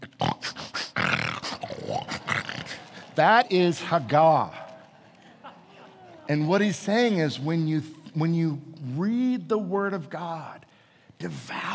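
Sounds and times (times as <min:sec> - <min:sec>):
lion growling and grunting while feeding: 0:00.0 - 0:03.1
laughter: 0:01.6 - 0:07.4
speech: 0:03.2 - 0:04.6, 0:06.3 - 0:11.7.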